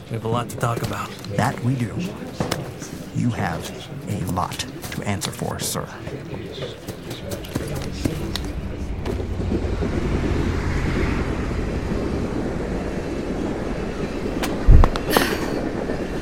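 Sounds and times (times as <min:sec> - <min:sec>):
subway train clattering on rails: 0:00.0 - 0:16.2
speech: 0:00.1 - 0:10.8
subway train wheels screeching: 0:07.8 - 0:16.2.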